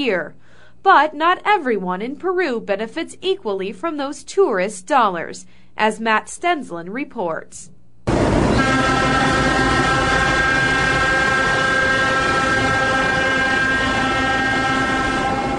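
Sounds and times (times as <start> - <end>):
speech: 0.0 - 7.7
constant mechanical roar: 8.1 - 15.5
train horn blaring: 8.1 - 15.5.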